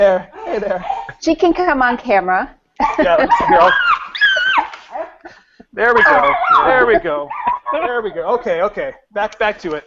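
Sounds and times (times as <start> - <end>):
speech: 0.0 - 3.9, 5.8 - 9.8
laughter: 2.8 - 9.0
young female puppy yipping and whimpering excitedly after a walk: 3.3 - 5.2, 5.8 - 8.0.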